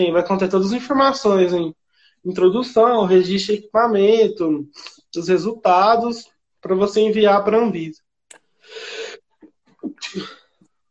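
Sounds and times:
speech: 0.0s - 8.0s, 10.0s - 10.4s
short breathy vocal sounds: 8.3s - 10.6s
person sneezing: 9.8s - 10.5s.

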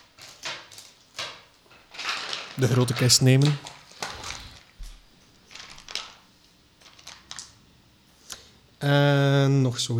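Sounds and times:
handful of dice being picked up and rattled: 0.2s - 7.6s
speech: 2.6s - 3.7s, 8.8s - 9.9s.

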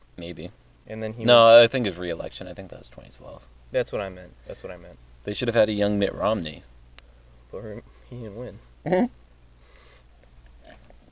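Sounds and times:
speech: 0.2s - 6.7s, 7.5s - 9.2s
soft slurping sip of water: 9.7s - 11.1s.

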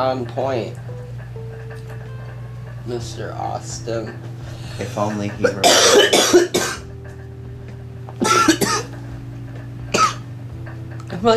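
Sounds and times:
speech: 0.0s - 0.9s, 2.9s - 6.8s
low steady hum: 0.0s - 11.3s
person coughing harshly: 5.4s - 6.9s, 8.2s - 8.9s, 10.0s - 10.2s.

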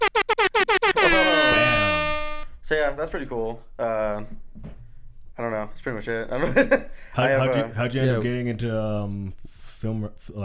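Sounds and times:
air horn blasts: 0.4s - 2.6s
speech: 2.9s - 4.7s, 5.4s - 10.4s.

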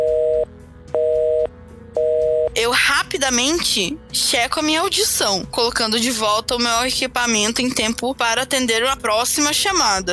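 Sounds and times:
telephone line tone through an earpiece: 0.0s - 2.6s
speech: 2.6s - 10.1s.

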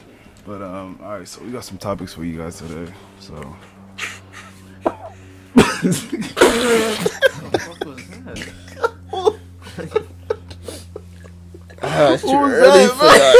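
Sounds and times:
speech: 0.4s - 3.8s, 5.8s - 8.6s, 9.8s - 10.0s, 12.0s - 13.3s
laughter: 4.0s - 13.3s
cough: 5.6s - 7.2s.

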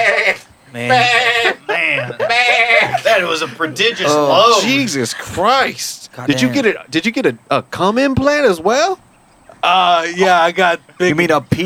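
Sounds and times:
goat bleating: 0.0s - 5.4s
laughter: 0.7s - 6.8s
speech: 3.2s - 11.6s.

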